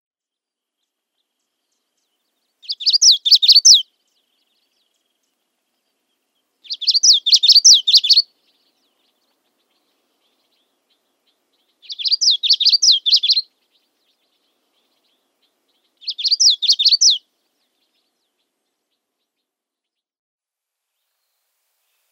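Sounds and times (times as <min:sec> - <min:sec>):
Common Yellowthroat calling: 0:02.6 - 0:03.8, 0:06.6 - 0:08.2, 0:11.8 - 0:13.5, 0:16.0 - 0:17.2.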